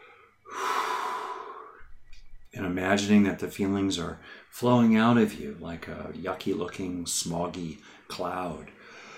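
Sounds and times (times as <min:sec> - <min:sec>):
slow exhaling breath: 0:00.0 - 0:01.9
speech: 0:02.5 - 0:08.8.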